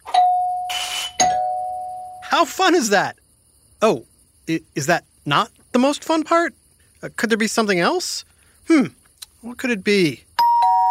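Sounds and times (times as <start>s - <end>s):
doorbell rung by a trick-or-treater on Halloween: 0.1s - 2.3s, 10.4s - 10.8s
rattly burst of noise: 0.7s - 1.3s
speech: 2.3s - 3.2s, 3.8s - 10.3s.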